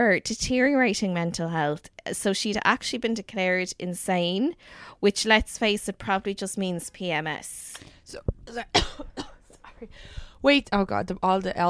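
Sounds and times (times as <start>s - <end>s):
speech: 0.0s - 11.6s
woman coughing: 8.5s - 10.0s.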